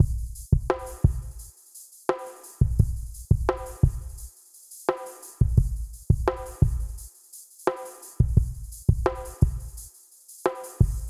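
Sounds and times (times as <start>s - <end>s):
drums playing: 0.0s - 1.5s, 2.1s - 4.3s, 4.9s - 7.1s, 7.7s - 9.9s, 10.5s - 11.0s.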